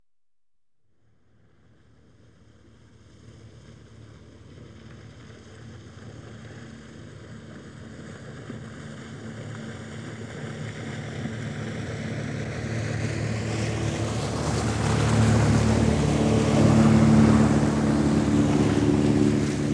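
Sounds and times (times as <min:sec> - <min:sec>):
cabin cruiser passing right to left: 0:11.7 - 0:19.7.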